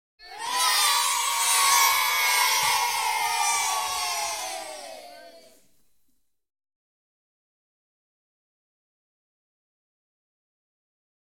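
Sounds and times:
children cheering at a primary school in Brighton: 0.2 - 5.6.

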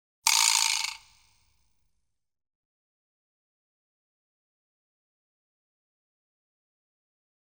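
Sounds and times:
vibraslap rattle: 0.3 - 1.2.

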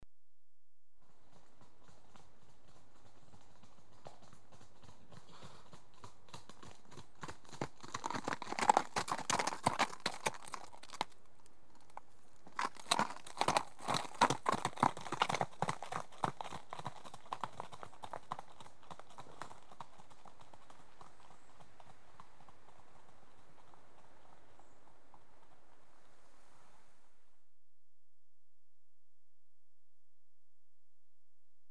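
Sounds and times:
two horses trotting on gravelly track: 1.1 - 25.7.

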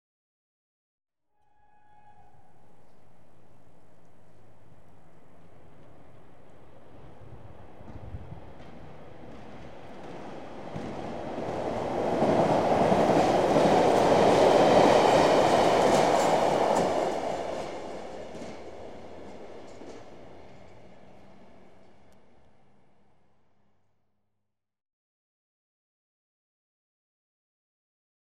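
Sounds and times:
trains passing through outdoors: 1.6 - 23.1.

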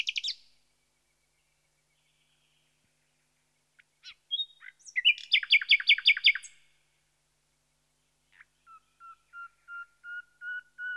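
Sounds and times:
common nightingale singing: 0.0 - 2.8, 3.7 - 6.7, 8.3 - 10.9.

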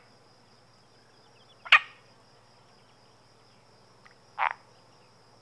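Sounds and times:
Iberian marsh frog giving short rasping croaks: 1.6 - 2.0, 4.4 - 4.6.

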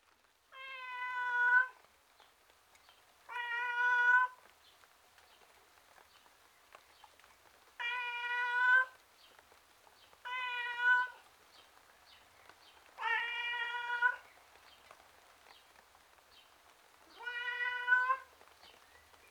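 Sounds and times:
male tom cat meowing miserably outdoors: 0.6 - 1.8, 3.3 - 4.4, 7.8 - 9.0, 10.3 - 11.2, 13.0 - 14.2, 17.1 - 18.3.

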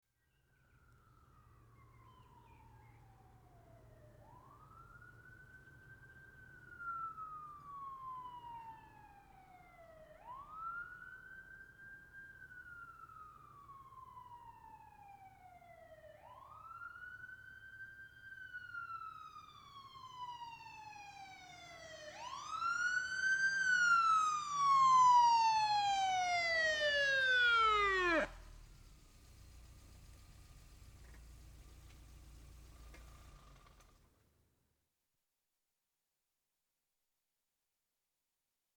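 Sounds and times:
police car arriving: 0.6 - 34.1
police car siren wailing: 1.0 - 28.8.

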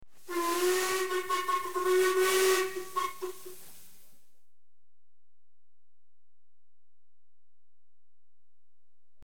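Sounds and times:
LMS engine whistle: 0.2 - 4.0.

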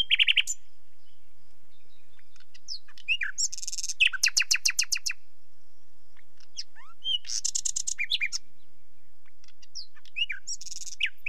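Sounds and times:
common nightingale singing with sliding whistles and churring rattle: 0.0 - 11.2.

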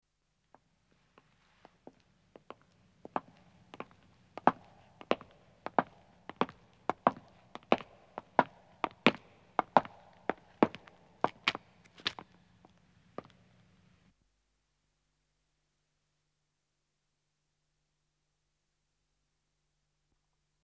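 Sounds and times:
footsteps of two men approaching on stone: 3.1 - 12.4.

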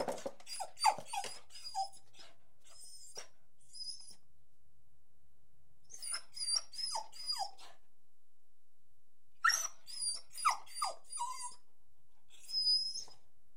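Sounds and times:
Beagle whining in high thin wavering whimpers: 0.4 - 4.2, 5.9 - 7.8, 9.4 - 11.6, 12.4 - 13.2.

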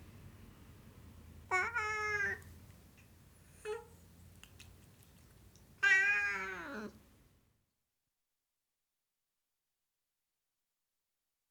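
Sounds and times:
Siamese cat meowing: 1.5 - 2.5, 5.8 - 7.0.

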